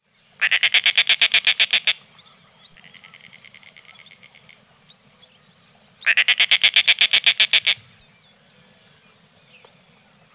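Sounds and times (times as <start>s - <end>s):
Snail Kite rasping chattering call: 0.4s - 2.0s, 2.7s - 4.6s, 6.0s - 7.9s.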